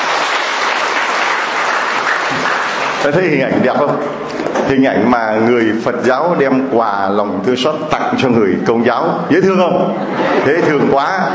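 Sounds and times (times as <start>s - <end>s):
church congregation applauding: 0.0s - 3.3s
speech: 3.0s - 11.3s
laughter: 9.6s - 11.3s.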